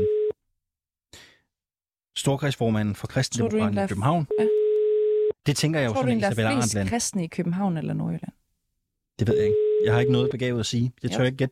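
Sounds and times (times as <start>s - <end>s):
brief steady electronic telephone tone: 0.0s - 0.4s, 4.3s - 5.4s, 9.3s - 10.4s
speech: 2.2s - 4.6s, 5.5s - 8.4s, 9.2s - 11.5s.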